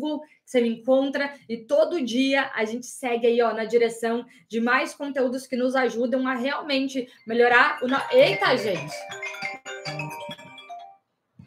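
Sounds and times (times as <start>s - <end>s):
speech: 0.0s - 9.4s
phone's melodic ringtone: 7.5s - 11.4s.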